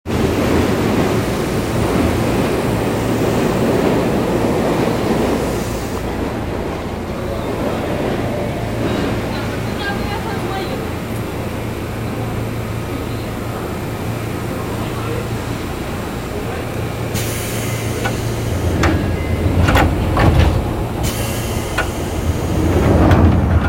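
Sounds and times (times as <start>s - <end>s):
train sounds east of Nakai Station on the Seibu Shinjuku Line: 0.0s - 23.6s.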